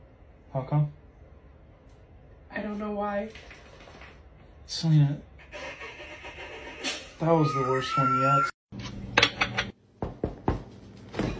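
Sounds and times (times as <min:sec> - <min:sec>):
speech: 0:00.5 - 0:01.0, 0:02.6 - 0:03.6, 0:04.7 - 0:05.3, 0:07.2 - 0:09.0
knocking on a fridge door: 0:10.0 - 0:10.7.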